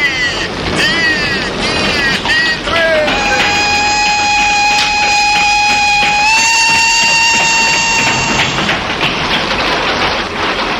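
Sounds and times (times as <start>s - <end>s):
long steady train whistle: 0.0s - 8.9s
train rumbling along the rails: 0.0s - 10.7s.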